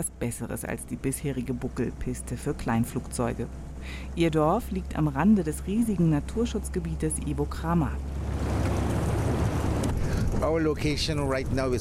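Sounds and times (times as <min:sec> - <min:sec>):
speech: 0:00.0 - 0:08.6, 0:10.4 - 0:11.8
boat engine drone on a jungle river: 0:00.0 - 0:11.8
rushing water from a boat moving along a jungle river: 0:08.0 - 0:10.7
wind buffeting: 0:08.0 - 0:11.8.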